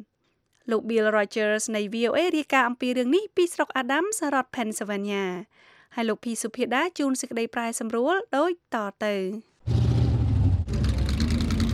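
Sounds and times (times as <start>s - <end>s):
speech: 0.7s - 9.8s
antique car engines roaring in a race at a county fair: 9.7s - 11.7s.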